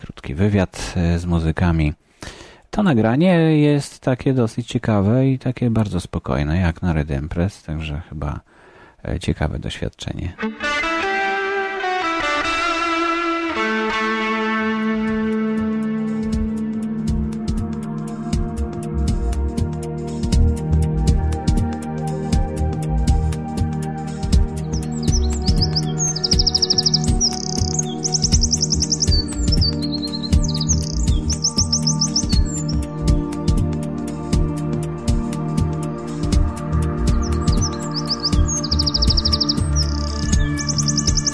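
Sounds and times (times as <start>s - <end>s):
speech: 0.3s - 2.0s, 2.8s - 10.6s
high trilling recorded birdsong from an audio CD: 11.8s - 41.3s.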